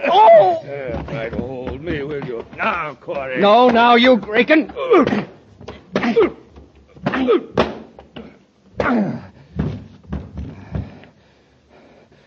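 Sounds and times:
heavy punches landing as dull thuds: 0.0s - 11.1s
speech: 2.7s - 5.3s
strained grunts: 4.6s - 7.6s, 8.2s - 9.6s.

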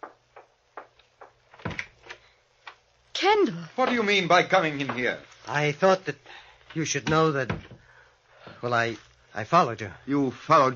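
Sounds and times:
door creaking and thudding as it swings: 0.0s - 2.2s, 7.0s - 7.8s
speech: 3.2s - 7.8s, 8.6s - 10.7s.

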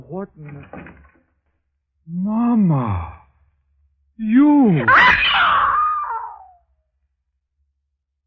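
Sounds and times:
speech: 0.1s - 1.1s, 2.1s - 3.2s, 4.2s - 5.6s
woman screaming in fright: 4.8s - 6.6s.

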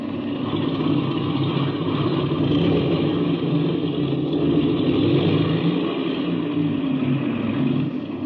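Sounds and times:
aircraft engine running up and revving: 0.0s - 8.2s.

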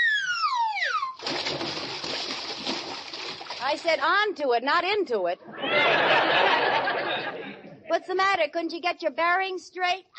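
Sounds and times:
comic falling whistle: 0.0s - 1.2s
loud water splash of something falling into the ocean: 1.2s - 4.0s
speech: 3.6s - 6.6s, 7.9s - 10.1s
laughter: 5.5s - 7.9s.

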